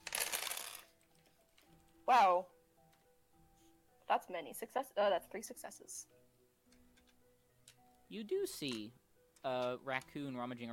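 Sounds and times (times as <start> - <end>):
five dice rattling and tumbling across a hard surface: 0.0 - 0.9
speech: 2.1 - 2.6, 4.1 - 6.2, 8.1 - 10.7.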